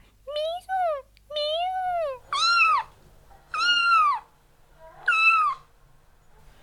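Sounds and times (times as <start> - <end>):
kitten meowing: 1.4 - 2.9, 3.5 - 4.3, 5.0 - 5.7.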